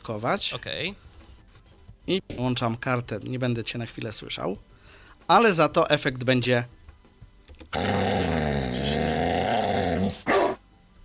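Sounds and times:
speech: 0:00.0 - 0:01.1, 0:02.1 - 0:04.7, 0:05.3 - 0:06.8, 0:07.7 - 0:09.1
dog growling: 0:07.7 - 0:10.6
dog barking: 0:09.9 - 0:10.6.

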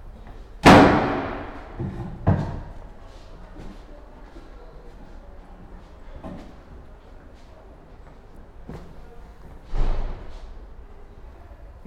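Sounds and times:
door slamming: 0:00.6 - 0:02.0, 0:09.7 - 0:10.3.

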